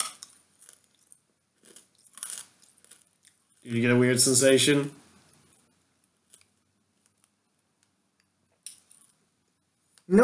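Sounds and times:
hard fizzy candy being bitten and chewed: 1.6s - 3.1s
speech: 3.6s - 5.0s.

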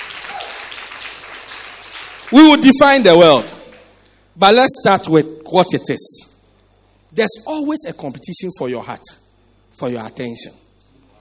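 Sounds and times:
crowd clapping: 0.0s - 2.7s, 3.4s - 4.0s
speech: 2.3s - 3.6s, 4.4s - 6.2s, 7.1s - 9.2s, 9.8s - 10.7s.

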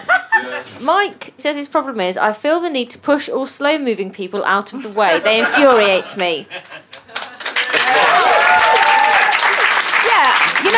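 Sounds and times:
laughter: 0.0s - 0.8s, 4.8s - 9.0s
speech: 0.6s - 6.8s
audience applauding: 6.2s - 10.7s
crowd cheering and whooping: 7.4s - 10.7s.

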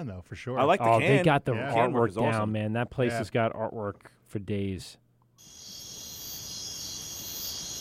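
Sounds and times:
speech: 0.0s - 5.6s
chorus of crickets chirping: 5.4s - 7.7s.

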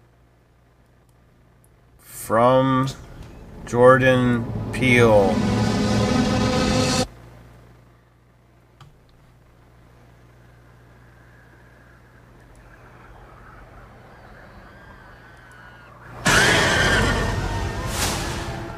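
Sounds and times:
speech: 2.3s - 3.1s, 3.7s - 5.5s
low droning rumble in a film trailer: 2.3s - 7.2s, 9.9s - 18.7s
loud booming cinematic hit in a film trailer: 3.0s - 7.1s, 16.1s - 18.7s
horse whinnying in a film trailer: 12.4s - 18.7s.

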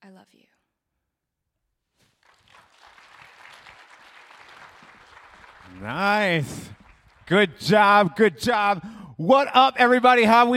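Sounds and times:
speech: 0.2s - 0.7s, 5.7s - 6.7s, 7.3s - 10.5s
audience clapping and applause: 2.0s - 7.9s.

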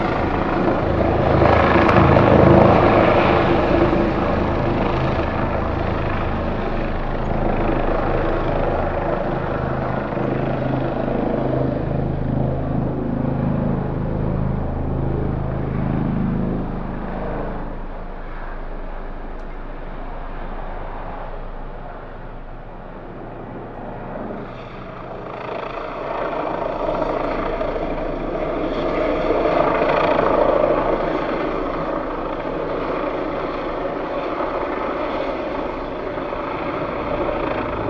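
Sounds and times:
police helicopter circling over a neighbourhood: 0.0s - 37.8s.

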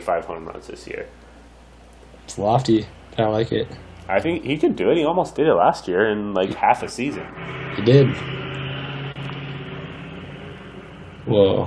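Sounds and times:
speech: 0.0s - 1.3s, 2.3s - 8.4s, 11.2s - 11.6s
heavy truck engine roaring while driving by: 2.5s - 11.6s.

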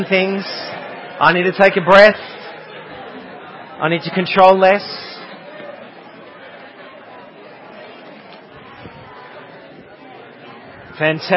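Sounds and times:
speech: 0.0s - 2.4s, 3.8s - 5.1s, 11.0s - 11.3s
audience members chatting and greeting each other: 0.0s - 11.3s.

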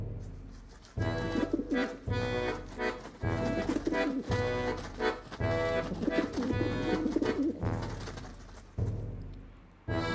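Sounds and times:
pigeons ruffling feathers: 0.5s - 8.8s
pigeons cooing: 1.1s - 8.0s.

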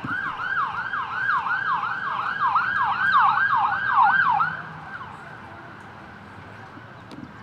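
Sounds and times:
ambulance siren wailing in a rapid repeating yelp: 0.0s - 5.2s
low rumble of road traffic: 0.0s - 7.4s.

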